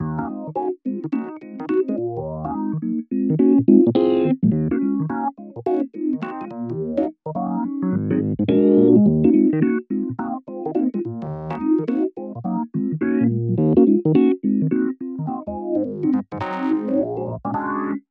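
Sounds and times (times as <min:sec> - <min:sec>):
electric piano: 0:00.0 - 0:18.0.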